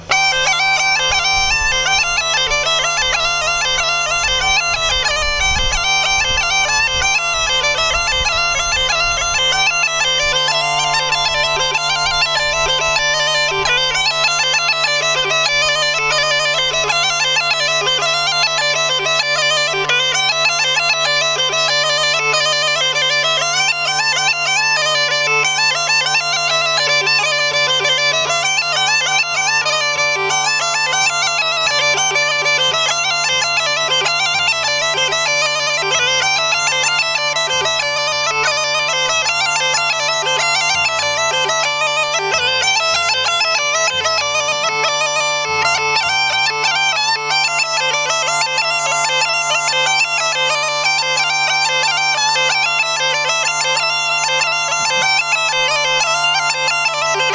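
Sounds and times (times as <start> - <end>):
small gajda bagpipe playing nestinarsko melodies: 0.0 - 57.3.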